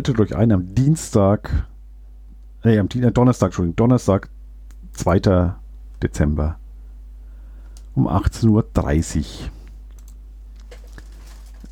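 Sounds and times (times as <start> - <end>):
speech: 0.0 - 1.7, 2.6 - 4.4, 5.0 - 6.6, 8.0 - 9.6
faint steady electrical hum: 0.0 - 11.7
computer mouse clicks: 9.9 - 10.8.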